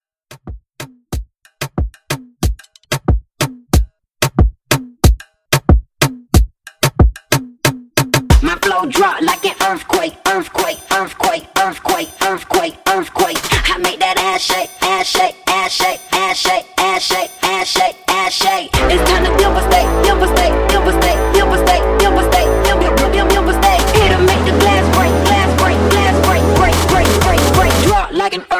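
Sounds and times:
moombahton trap music: 0.3s - 28.5s.

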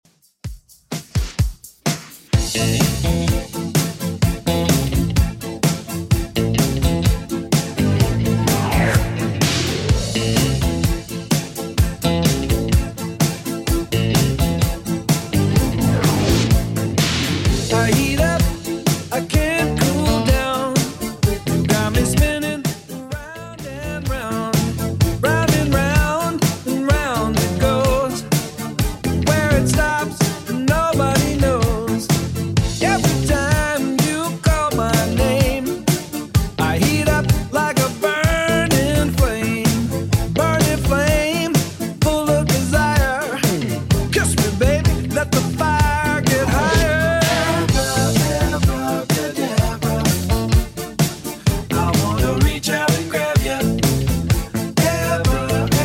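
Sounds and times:
80s drum machine beat at 127 bpm: 0.1s - 55.8s.

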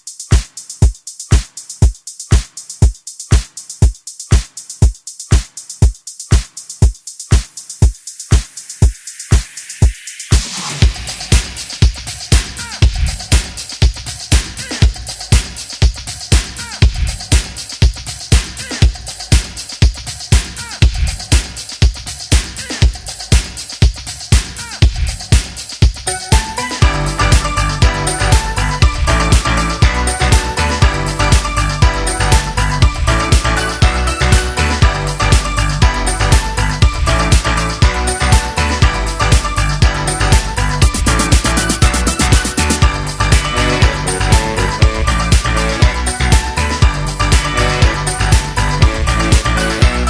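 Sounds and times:
Latin pop music snippets: 0.3s - 50.0s.

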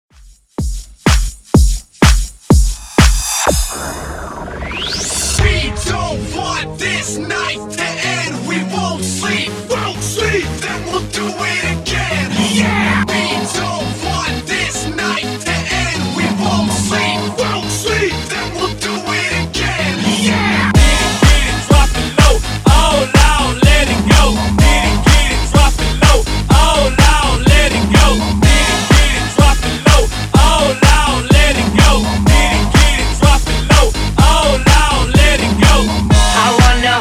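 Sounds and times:
hype intro music at 125 BPM: 0.8s - 36.9s.

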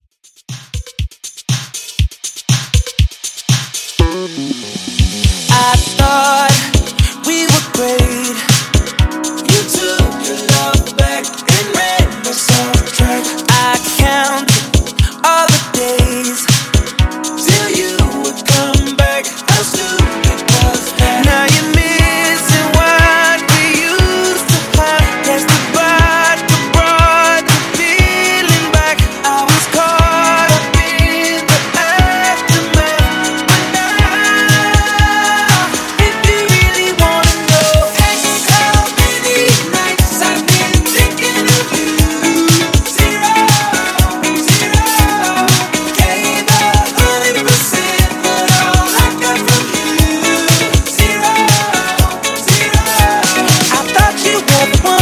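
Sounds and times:
funk drum loop: 0.2s - 55.0s.

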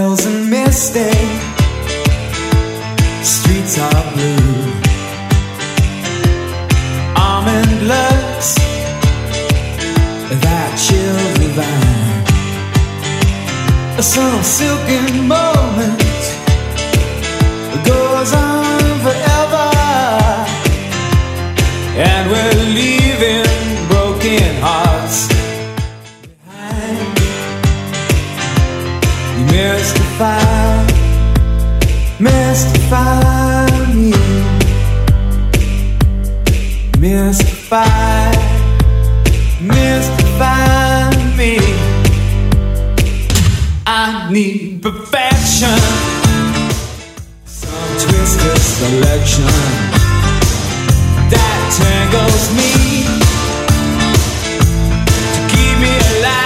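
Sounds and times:
80s rock drum beat: 0.2s - 26.1s, 26.8s - 43.9s, 45.3s - 56.4s.

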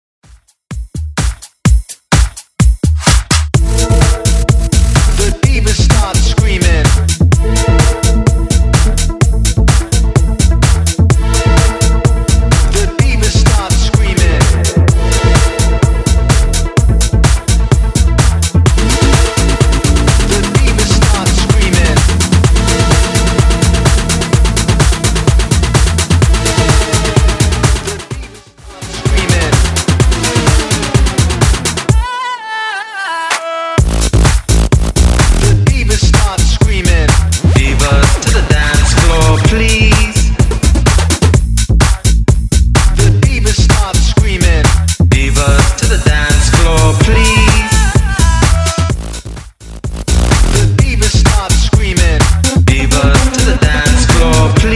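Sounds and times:
club house music: 0.2s - 32.4s, 33.2s - 54.7s.

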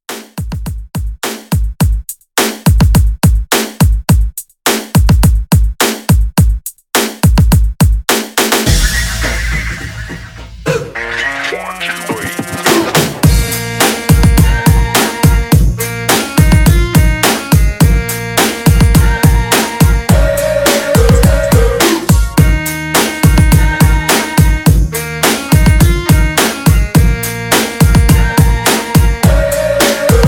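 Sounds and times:
drum machine beat at 105 BPM: 0.1s - 30.2s.

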